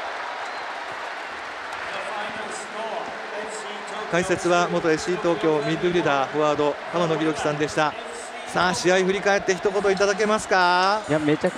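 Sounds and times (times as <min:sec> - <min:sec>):
stadium crowd applause: 0:00.0 - 0:08.9
large stadium crowd cheering after a football match: 0:00.0 - 0:11.5
speech: 0:04.1 - 0:11.5.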